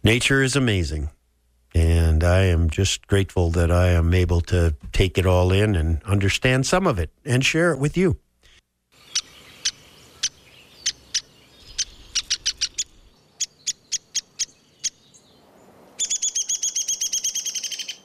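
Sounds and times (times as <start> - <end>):
speech: 0.0 - 8.2
downy woodpecker calls: 8.4 - 15.3, 16.0 - 18.0.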